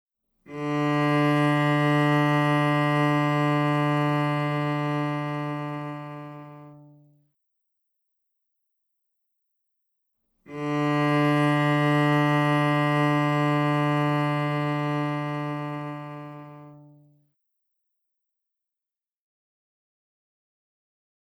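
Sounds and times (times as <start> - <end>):
cello tuning note D: 0.5 - 7.1, 10.5 - 17.0.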